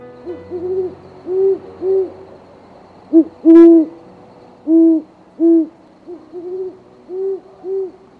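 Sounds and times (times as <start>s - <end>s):
owl hooting: 0.3s - 2.2s, 3.1s - 4.0s, 4.6s - 8.1s.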